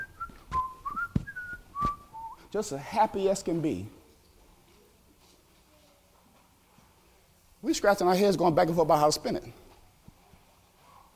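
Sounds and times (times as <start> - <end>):
person whistling a short wavering tune while walking: 0.0 - 2.5
soft thumps: 0.1 - 2.1
speech: 2.5 - 4.0, 7.7 - 9.6.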